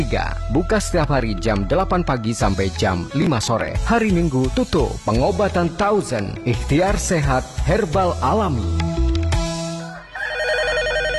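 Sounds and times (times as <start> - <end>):
speech: 0.0 - 9.0
telephone ringing with a warbling electronic ringtone: 10.2 - 11.1.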